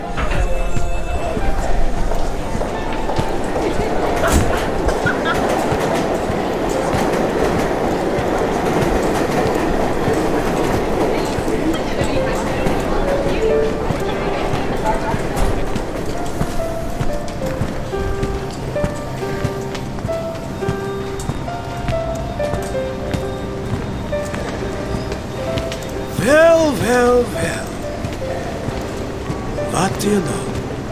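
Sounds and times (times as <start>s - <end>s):
train rolling along rails heard from inside the car: 0.0s - 30.9s
train wheels clicking and clacking: 2.1s - 26.0s.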